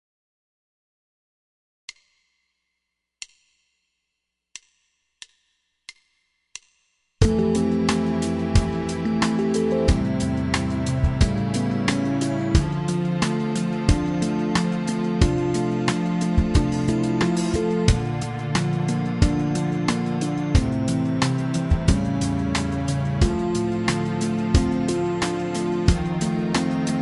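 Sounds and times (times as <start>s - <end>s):
fretless melody: 7.2s - 27.0s.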